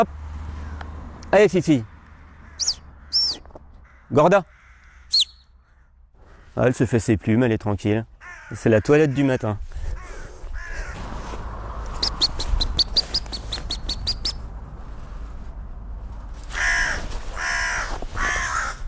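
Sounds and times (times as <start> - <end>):
speech: 0.0 - 0.2, 1.3 - 1.9, 4.1 - 4.5, 6.6 - 9.6
crow cawing outdoors: 2.1 - 6.6, 8.2 - 11.1, 16.5 - 18.8.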